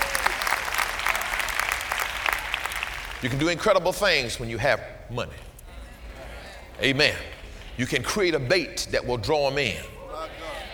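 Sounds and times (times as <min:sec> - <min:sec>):
audience giving a few light hand claps: 0:00.0 - 0:03.6
speech: 0:03.2 - 0:05.5, 0:06.8 - 0:09.9.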